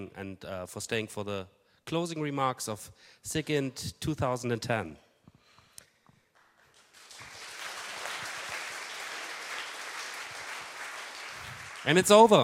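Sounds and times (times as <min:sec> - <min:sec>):
speech: 0:00.0 - 0:05.1, 0:11.8 - 0:12.4
audience applause at a conference: 0:06.4 - 0:12.4.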